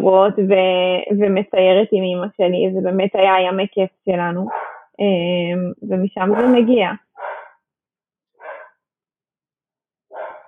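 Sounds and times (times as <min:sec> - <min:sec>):
speech: 0:00.0 - 0:07.3
dog barking: 0:04.5 - 0:04.8, 0:06.3 - 0:07.6, 0:08.4 - 0:08.7, 0:10.1 - 0:10.4.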